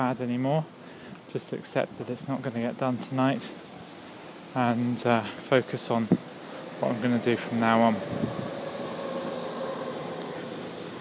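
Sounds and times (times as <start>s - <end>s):
speech: 0.0s - 3.8s, 4.5s - 6.2s, 6.8s - 8.4s
train rumbling past: 3.4s - 10.9s
train wheels whining on the rails: 3.4s - 10.9s.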